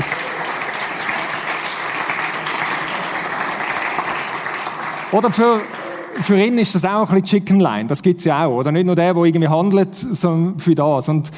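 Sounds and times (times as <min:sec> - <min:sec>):
audience applause from many hands: 0:00.0 - 0:07.0
speech: 0:05.1 - 0:11.3.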